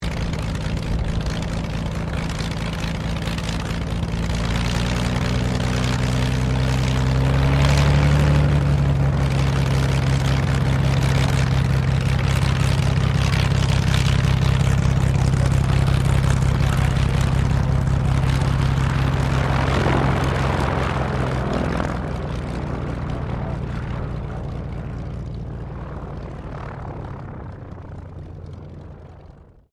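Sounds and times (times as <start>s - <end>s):
RAAF CT4A training aircraft idling while taxiing: 0.0s - 29.7s.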